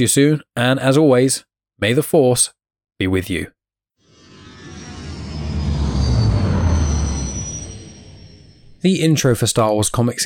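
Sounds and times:
speech: 0.0 - 3.6, 8.8 - 10.2
faint high whine: 4.1 - 9.0
train rolling along the tracks: 4.2 - 8.8.

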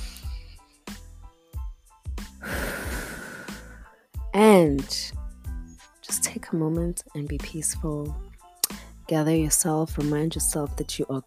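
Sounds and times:
person exhaling during a guided breathing exercise: 2.4 - 3.8
speech: 4.4 - 5.2, 6.2 - 8.3, 9.1 - 11.2.

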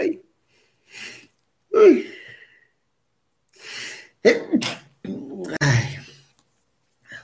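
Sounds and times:
speech: 4.2 - 4.6
loud sneeze with sharp gasping breath intakes: 4.2 - 5.0.

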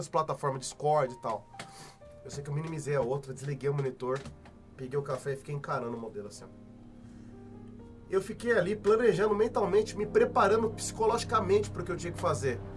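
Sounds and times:
speech: 0.0 - 6.7, 8.1 - 12.7
airplane rumble passing overhead: 4.6 - 12.7.

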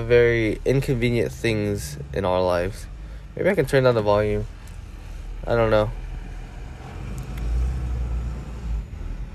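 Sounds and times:
speech: 0.0 - 4.6, 5.4 - 6.0
truck rumbling outdoors: 0.0 - 9.3.

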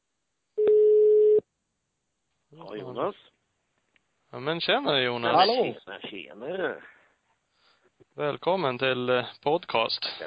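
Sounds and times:
telephone tone when calling someone: 0.6 - 1.4
speech: 2.8 - 3.3, 4.3 - 7.0, 8.2 - 10.2.

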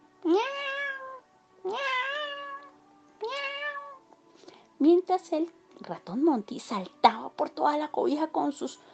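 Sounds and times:
cat hiding under a bed meowing: 0.3 - 4.0
speech: 4.8 - 8.9.

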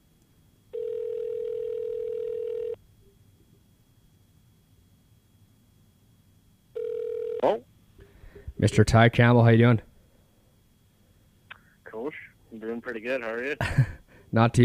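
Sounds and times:
telephone tone while placing a call: 0.7 - 2.8, 6.8 - 7.6
speech: 7.4 - 7.7, 8.6 - 9.9, 12.6 - 14.6.

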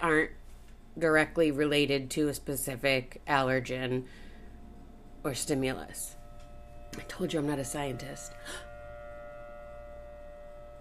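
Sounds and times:
speech: 0.0 - 0.4, 1.0 - 4.2, 5.2 - 6.2, 6.9 - 8.7
tornado warning siren tone during a routine test: 4.2 - 10.7.

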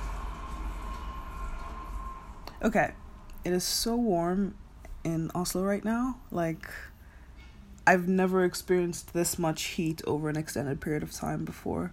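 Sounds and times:
train rumbling past with a low roar: 0.0 - 3.9
faint high metallic whine of a passing train: 0.0 - 6.5
speech: 2.6 - 6.9, 7.9 - 11.9.

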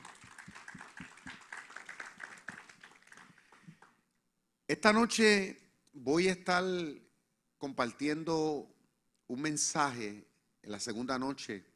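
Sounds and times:
audience applause at a sermon: 0.0 - 3.9
speech: 4.7 - 7.0, 7.6 - 8.7, 9.3 - 11.7.

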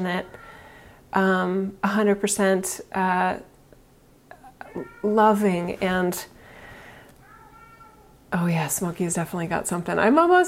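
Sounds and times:
speech: 0.0 - 0.4, 1.1 - 3.5, 4.7 - 6.4, 8.3 - 10.4
soft hiss: 0.0 - 10.4
cat giving an odd drawn-out meow: 4.6 - 5.4, 7.2 - 8.2.

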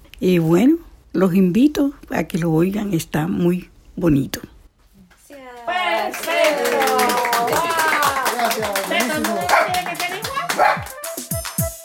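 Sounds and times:
speech: 0.2 - 4.4
lively voices: 4.9 - 11.1
rhythmic hand clapping: 5.2 - 11.8
small dog yapping excitedly: 9.4 - 9.8, 10.4 - 11.1.

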